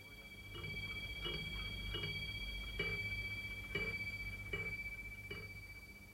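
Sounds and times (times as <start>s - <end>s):
low hum: 0.0s - 6.1s
metallic ringing from desk clock chime: 0.0s - 6.1s
desk clock ticking: 0.5s - 5.6s.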